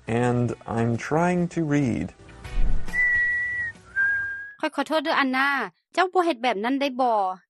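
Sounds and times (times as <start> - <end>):
speech: 0.5 - 2.2, 4.7 - 7.4
person whistling held high notes: 2.9 - 4.6.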